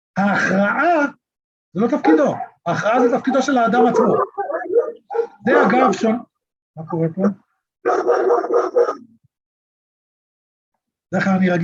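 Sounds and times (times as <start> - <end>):
speech: 0.2 - 4.6, 5.4 - 9.1, 11.1 - 11.6
dog barking: 2.0 - 6.1, 7.2 - 9.2.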